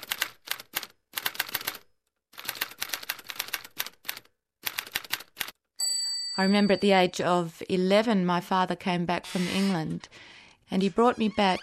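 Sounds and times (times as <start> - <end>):
keys clacking on an enormous manual typewriter: 0.0 - 1.8, 2.4 - 5.5
speech: 6.4 - 11.6.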